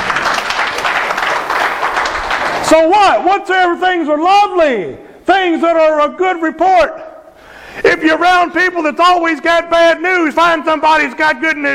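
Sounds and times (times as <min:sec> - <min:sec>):
audience applause during a sermon: 0:00.0 - 0:02.9
speech: 0:02.8 - 0:07.0, 0:07.8 - 0:11.7.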